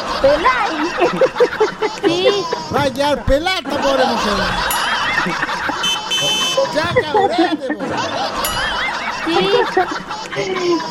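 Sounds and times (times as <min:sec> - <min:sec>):
speech: 0:00.0 - 0:05.5, 0:06.8 - 0:08.6, 0:09.3 - 0:10.9
people laughing: 0:00.0 - 0:10.9
motorcycle horn blaring: 0:05.7 - 0:06.7.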